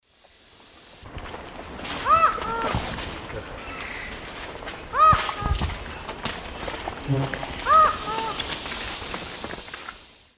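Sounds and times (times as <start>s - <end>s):
Herpetotheres cachinnans calling in South American Eastern Lowlands: 2.0s - 2.9s, 4.9s - 5.7s, 7.2s - 8.4s.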